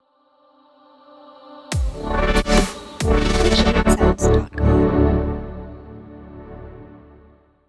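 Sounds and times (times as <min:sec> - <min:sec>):
dub music: 0:01.8 - 0:05.0.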